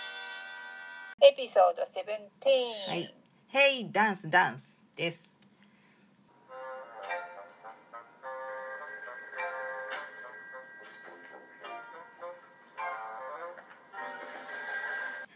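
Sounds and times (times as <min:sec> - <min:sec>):
speech: 0:01.2 - 0:05.3
telephone bell ringing: 0:08.3 - 0:12.6, 0:14.0 - 0:15.3.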